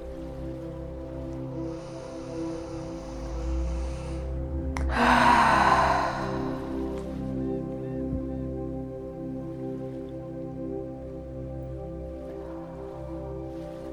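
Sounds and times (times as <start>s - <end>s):
soft steady musical drone: 0.0s - 13.9s
deep breathing in through the nose and out through the mouth during a guided meditation: 1.6s - 7.6s.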